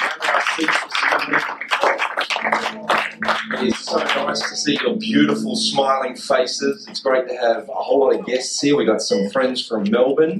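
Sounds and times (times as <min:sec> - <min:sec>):
audience clapping hands: 0:00.0 - 0:07.2
speech: 0:00.6 - 0:01.6, 0:03.6 - 0:10.3.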